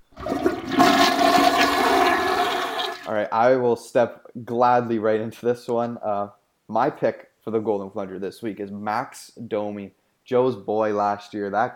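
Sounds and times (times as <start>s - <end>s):
toilet flushing: 0.0s - 3.1s
speech: 3.1s - 11.7s.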